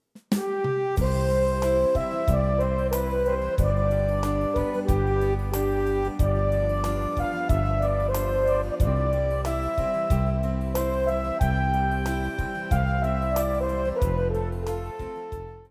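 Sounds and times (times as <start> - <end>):
horn concerto in D: 0.4 - 15.6.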